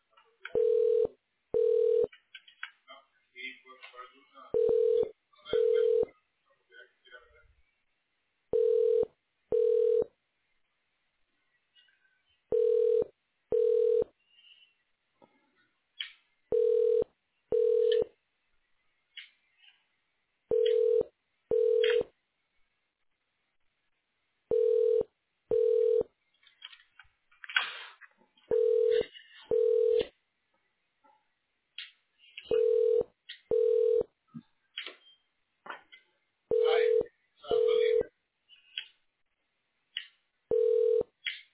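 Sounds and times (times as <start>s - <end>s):
faint noise: 0.0s - 41.5s
telephone ringback tone in double bursts during call transfer: 0.6s - 2.1s, 4.6s - 6.1s, 8.5s - 10.1s, 12.5s - 14.1s, 16.5s - 18.1s, 20.5s - 22.1s, 24.5s - 26.1s, 28.5s - 30.0s, 32.5s - 34.1s, 36.5s - 37.0s, 40.5s - 41.1s.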